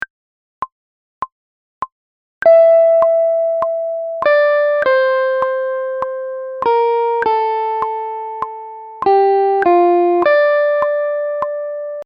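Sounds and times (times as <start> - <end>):
synth lead: 2.5 - 11.9.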